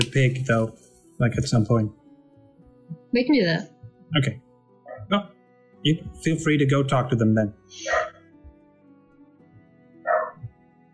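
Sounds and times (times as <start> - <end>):
speech: 0.2 - 2.0, 3.1 - 4.4, 5.1 - 8.1
dog barking at a neighbor arriving home: 4.9 - 5.1, 7.8 - 8.2, 10.0 - 10.5.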